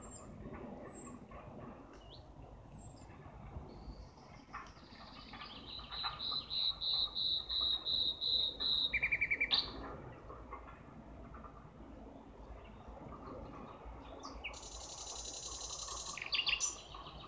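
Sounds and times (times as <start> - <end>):
common nightingale song: 3.7 - 9.8, 14.1 - 17.2.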